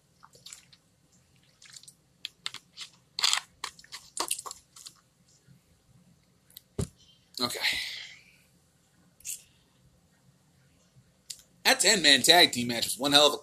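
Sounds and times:
person sipping water: 0.3 - 0.8
speech: 7.4 - 7.9, 11.8 - 13.4.

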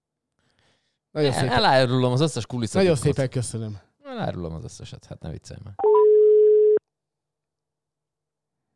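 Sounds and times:
speech: 1.2 - 6.0
telephone call tone over a mobile phone line: 5.8 - 6.8.

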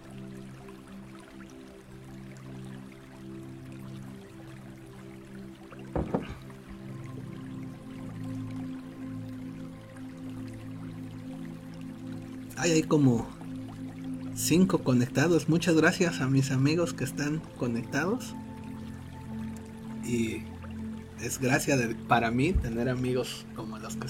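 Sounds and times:
person drinking water: 6.0 - 6.6
speech: 12.6 - 13.4, 14.4 - 18.4, 20.1 - 20.5, 21.2 - 24.0.

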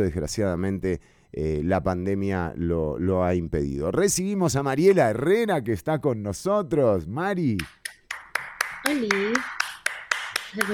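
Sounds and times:
speech: 0.0 - 7.8, 8.8 - 9.6, 10.5 - 10.7
steady evenly spaced sharp hand claps: 7.5 - 10.7.

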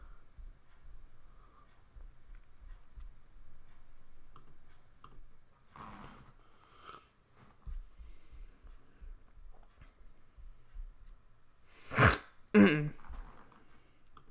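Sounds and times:
quiet breathing: 0.0 - 12.0, 13.0 - 14.2
sharp explosive sneezes: 11.8 - 13.2.

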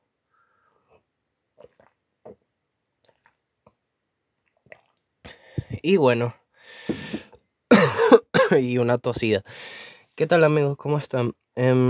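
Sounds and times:
sipping tea from a cup: 0.6 - 5.8
speech: 5.8 - 6.4, 8.5 - 11.8.

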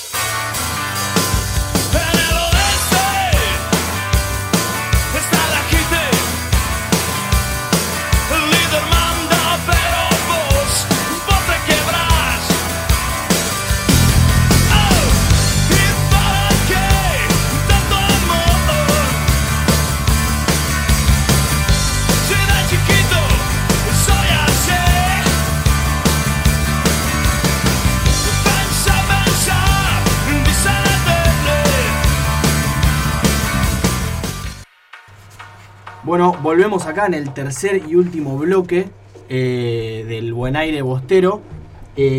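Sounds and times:
rock song with drums, guitars and sung vocals: 0.0 - 39.4
speech: 36.5 - 42.1.

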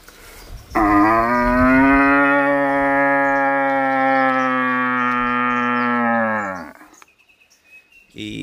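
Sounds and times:
young red deer stag roaring for hinds: 0.8 - 6.8.

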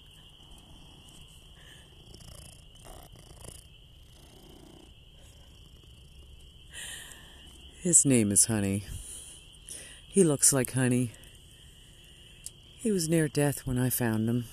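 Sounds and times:
domestic cat purring: 0.0 - 7.8
high-pitched chorus of frogs or insects droning outdoors: 0.0 - 14.5
speech: 7.8 - 9.0, 10.2 - 11.2, 12.8 - 14.5.

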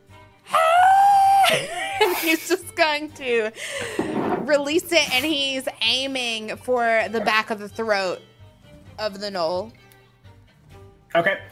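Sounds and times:
person screaming a character's cry in a dice-based tabletop game: 0.5 - 1.7
speech: 1.5 - 8.3, 9.0 - 9.8, 11.1 - 11.5.

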